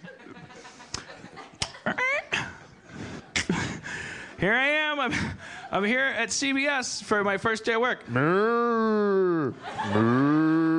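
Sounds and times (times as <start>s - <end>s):
laughter: 0.0s - 2.7s, 9.3s - 10.6s
speech: 4.4s - 10.5s
cow mooing: 9.9s - 10.7s.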